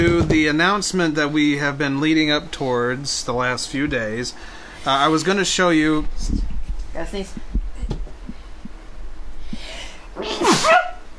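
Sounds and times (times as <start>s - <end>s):
speech: 0.4s - 7.5s, 10.2s - 10.9s
sharp breathy intake: 4.4s - 4.9s
low thumping: 6.1s - 10.0s
loud sneeze: 10.2s - 10.9s.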